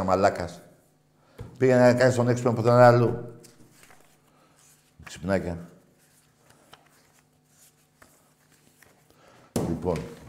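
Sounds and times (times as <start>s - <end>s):
speech: 0.0s - 0.7s, 1.6s - 3.4s, 5.1s - 5.7s, 9.8s - 10.2s
faint steady hum: 0.0s - 10.2s
papers rustling while someone searches for lost notes: 3.4s - 9.2s.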